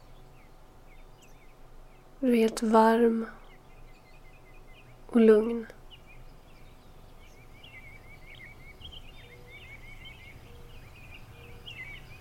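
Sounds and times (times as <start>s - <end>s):
soft birdsong chirps and trills: 0.0s - 12.1s
speech: 2.2s - 3.4s, 5.2s - 5.8s.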